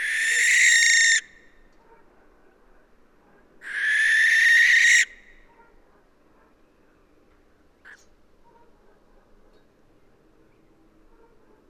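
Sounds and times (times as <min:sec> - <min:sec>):
western barn owl Tyto alba hissing screech: 0:00.0 - 0:01.2, 0:03.6 - 0:05.1.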